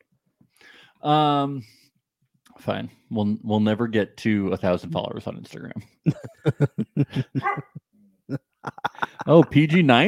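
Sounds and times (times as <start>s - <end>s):
speech: 1.0s - 1.8s, 2.6s - 10.0s
laughter: 5.7s - 7.8s, 8.4s - 10.0s
dog barking: 7.4s - 7.8s.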